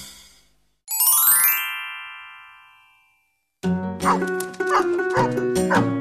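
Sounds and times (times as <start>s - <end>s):
bright chime: 0.9s - 3.4s
pet dog barking and yipping: 4.0s - 5.9s.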